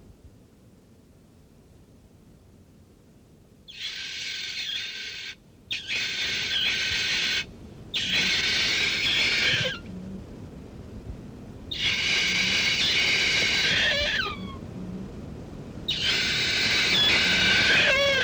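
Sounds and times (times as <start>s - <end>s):
kakapo calling: 3.7s - 9.9s, 11.7s - 14.7s, 15.9s - 18.2s.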